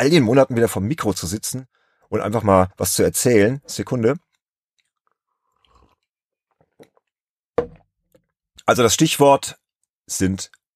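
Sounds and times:
speech: 0:00.0 - 0:04.3, 0:08.7 - 0:10.6
person sipping tea: 0:04.2 - 0:07.2
soft mouth and swallowing noises: 0:04.8 - 0:07.2
tea cup clunking as it is set down: 0:07.6 - 0:07.9.

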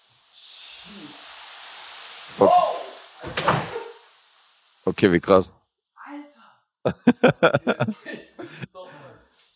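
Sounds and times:
steady hiss of rain or wind outside: 0:00.0 - 0:05.4, 0:07.1 - 0:07.9
window pushed shut: 0:03.2 - 0:03.8
speech: 0:04.9 - 0:05.6, 0:06.8 - 0:08.7
laughter: 0:06.9 - 0:09.1.

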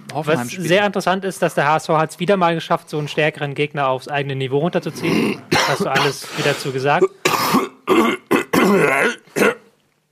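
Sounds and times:
speech: 0:00.2 - 0:09.2
person clearing throat: 0:05.0 - 0:06.2, 0:07.0 - 0:09.7.

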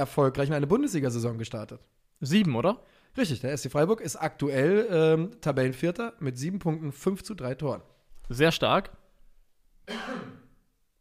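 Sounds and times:
speech: 0:00.0 - 0:09.0, 0:09.9 - 0:10.4
person coughing: 0:09.9 - 0:10.6.

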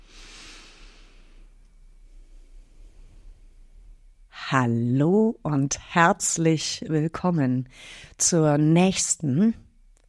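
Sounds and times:
nervous person taking a short breath before speaking: 0:00.0 - 0:01.4
faint low noise: 0:00.0 - 0:10.0
speech: 0:04.5 - 0:09.6.

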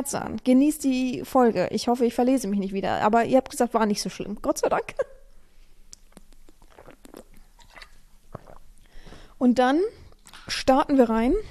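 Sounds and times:
speech: 0:00.0 - 0:05.1, 0:09.4 - 0:10.0, 0:10.7 - 0:11.4
small gulps: 0:05.8 - 0:09.4
wet mouth clicks and smacks: 0:05.9 - 0:08.9
person taking a sip of a drink: 0:05.9 - 0:09.4.

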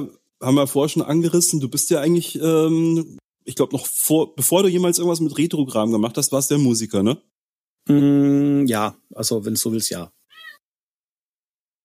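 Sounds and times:
speech: 0:00.0 - 0:10.4
cat meowing: 0:10.2 - 0:10.6.

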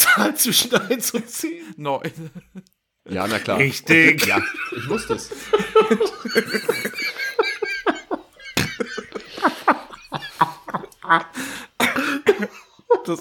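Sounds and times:
laughter: 0:00.0 - 0:13.1
speech: 0:00.2 - 0:07.2
loud rough coughs: 0:08.5 - 0:09.6, 0:11.8 - 0:12.8.

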